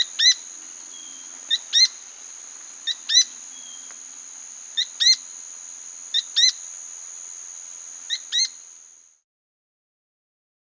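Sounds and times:
Azara's spinetail giving paired calls: 0:00.0 - 0:06.6.

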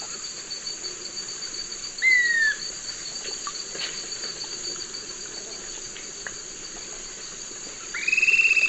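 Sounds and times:
steady high insect drone: 0:00.0 - 0:08.6
Swainson's flycatcher calling in the eastern lowlands of South America: 0:08.0 - 0:08.6.

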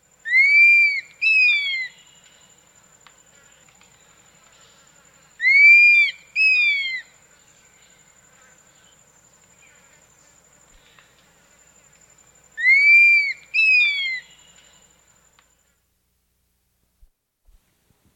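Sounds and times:
Rufous Mourner calling in South America: 0:00.2 - 0:02.2, 0:05.4 - 0:07.1, 0:12.6 - 0:14.6.

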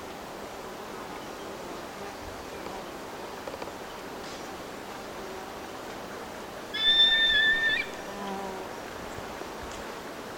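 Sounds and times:
solitary eagle piercing whistle in Ecuador: 0:06.8 - 0:08.0.

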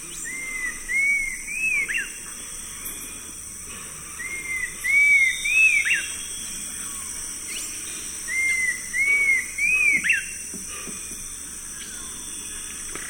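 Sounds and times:
steady high hiss: 0:00.0 - 0:13.0
cinnamon attila song of clear arched whistled notes: 0:00.2 - 0:02.2, 0:04.2 - 0:10.4.

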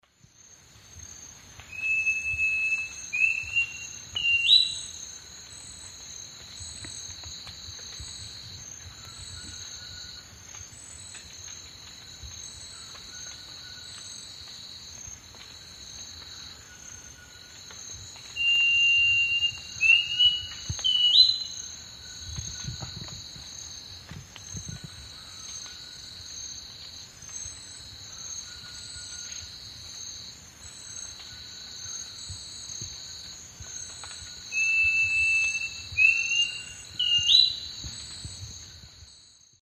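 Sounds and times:
Schiffornis turdina song in the Eastern Lowlands of South America: 0:01.7 - 0:05.0, 0:18.3 - 0:21.6, 0:34.5 - 0:37.8.

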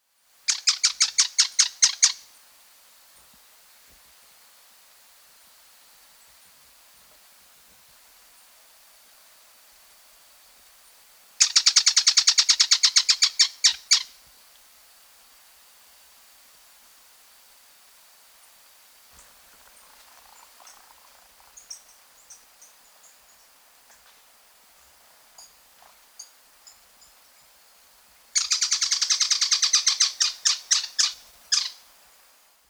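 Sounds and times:
slaty-capped flycatcher Leptopogon calling in South America: 0:00.5 - 0:02.3, 0:11.4 - 0:14.2, 0:19.2 - 0:31.9.

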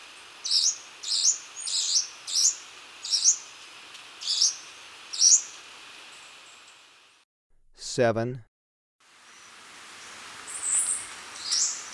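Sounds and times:
quiet background hiss: 0:00.0 - 0:07.2, 0:09.1 - 0:11.9
Choco Warbler giving sharp high chip notes in Ecuador: 0:00.4 - 0:03.5, 0:04.2 - 0:05.6, 0:10.5 - 0:11.9
speech: 0:08.0 - 0:08.5.

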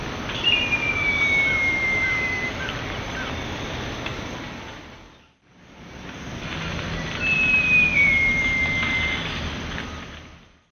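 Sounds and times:
Jacamerops aureus singing in the Eastern Lowlands of South America: 0:00.2 - 0:03.3, 0:06.9 - 0:10.0.

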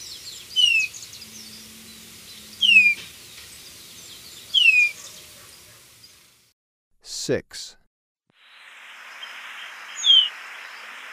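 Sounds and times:
Golden-rumped euphonia calling with sharp downslurred whistles in Ecuador: 0:02.4 - 0:03.0, 0:04.5 - 0:05.0, 0:09.2 - 0:10.8
speech: 0:07.3 - 0:07.8.

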